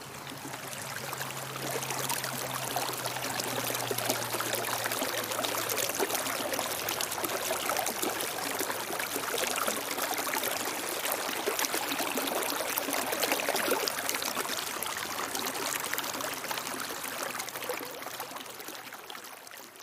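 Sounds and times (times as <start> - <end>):
running creek water: 0.0 - 19.8.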